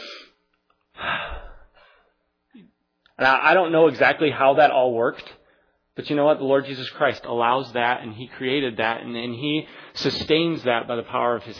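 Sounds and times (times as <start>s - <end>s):
deep breath in through the nose: 0.0s - 0.4s, 1.0s - 2.1s
speech: 3.2s - 5.4s, 6.0s - 11.5s.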